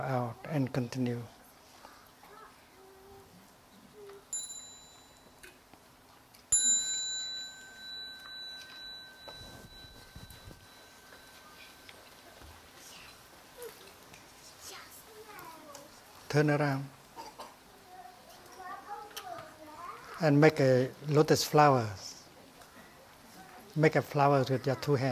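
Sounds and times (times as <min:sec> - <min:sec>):
speech: 0:00.3 - 0:01.4, 0:16.4 - 0:17.0, 0:20.2 - 0:22.1, 0:23.8 - 0:25.1
small meditation bell struck: 0:04.3 - 0:05.6, 0:06.5 - 0:12.2.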